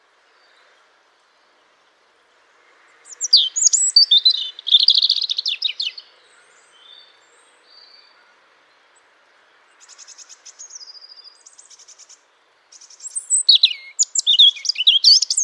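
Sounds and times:
European robin song with warbled phrases and pulsed buzzy sequence: 3.0s - 8.2s, 9.7s - 15.4s.

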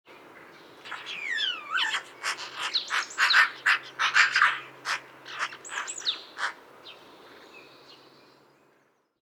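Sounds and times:
magpie Pica pica giving harsh rasping chatter: 0.9s - 6.6s.

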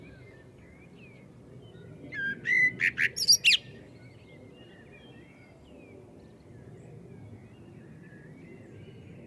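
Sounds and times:
common blackbird Turdus merula singing: 2.1s - 3.8s.

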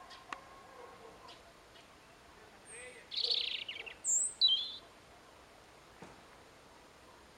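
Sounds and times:
European robin Erithacus rubecula trilling and whistling: 3.1s - 4.8s.

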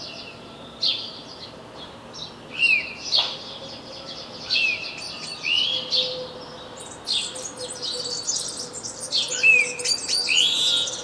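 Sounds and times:
House sparrow Passer domesticus chirps: 4.5s - 6.1s, 6.8s - 11.0s.

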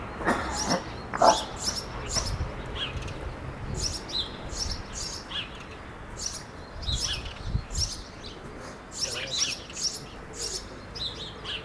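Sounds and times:
house sparrow Passer domesticus chirping: 0.0s - 11.6s.

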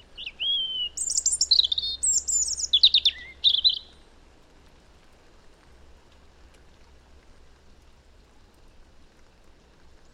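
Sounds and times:
European robin Erithacus rubecula song: 0.0s - 4.0s.

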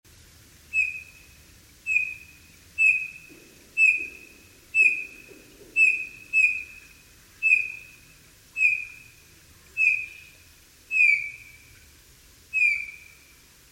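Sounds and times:
Eurasian bullfinch Pyrrhula pyrrhula calling with soft falling piping whistles: 0.7s - 1.2s, 1.9s - 8.0s, 8.6s - 9.2s, 9.8s - 10.3s, 10.9s - 11.6s, 12.5s - 13.2s.

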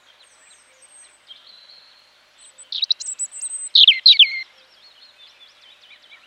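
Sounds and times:
European robin Erithacus rubecula singing: 0.0s - 6.2s.

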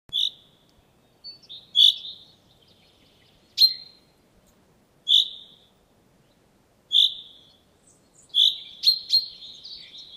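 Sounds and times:
common chaffinch Fringilla coelebs calling: 0.1s - 0.6s, 1.2s - 4.0s, 5.1s - 5.7s, 6.9s - 10.1s.

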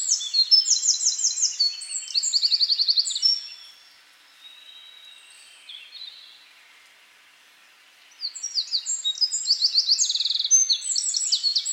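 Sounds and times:
Troglodytes troglodytes song: 0.0s - 3.8s, 8.2s - 11.7s.

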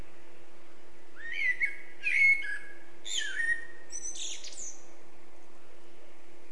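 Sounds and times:
low steady hum: 0.0s - 6.5s
Eurasian blackbird Turdus merula song: 1.2s - 4.9s.

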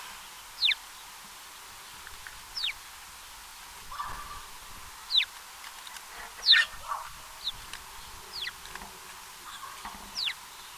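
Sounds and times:
soft background hiss: 0.0s - 10.7s
house sparrow chirps: 0.6s - 0.8s, 2.6s - 2.8s, 3.9s - 5.3s, 6.4s - 8.6s, 9.4s - 10.7s.

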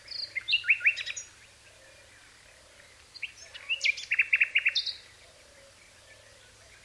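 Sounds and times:
Common nightingale Luscinia megarhynchos song: 0.0s - 6.8s.

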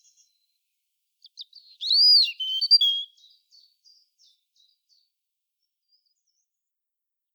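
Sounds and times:
European robin giving a short high phrase of ticks and whistles: 1.7s - 3.2s.

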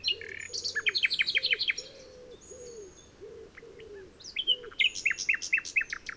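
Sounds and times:
steady low hooting coo: 0.0s - 4.9s
Common nightingale Luscinia megarhynchos song: 0.0s - 6.1s.

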